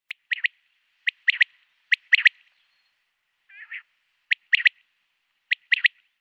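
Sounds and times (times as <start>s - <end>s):
common quail Coturnix coturnix calling: 0.1s - 6.1s.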